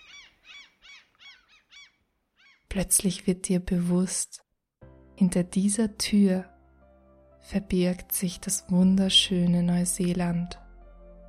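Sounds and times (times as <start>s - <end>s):
kiwi bird call: 0.0s - 2.7s
speech: 2.8s - 4.4s, 5.2s - 6.5s, 7.5s - 10.6s.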